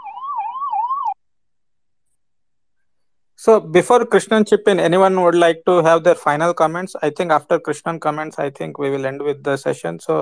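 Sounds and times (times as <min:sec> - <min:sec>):
ambulance siren wailing in a rising-and-falling tone: 0:00.0 - 0:01.2
speech: 0:03.4 - 0:10.2.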